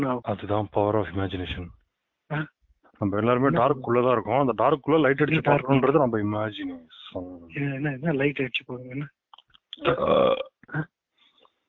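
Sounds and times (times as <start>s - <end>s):
speech: 0.0s - 9.2s, 9.8s - 11.0s
loud drawn-out croaky burp: 9.8s - 10.8s.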